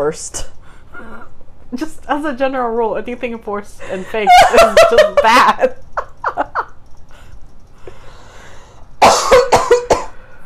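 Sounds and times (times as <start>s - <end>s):
speech: 0.0s - 0.5s, 1.7s - 5.8s
laughter: 3.8s - 6.8s
person coughing: 9.0s - 10.2s.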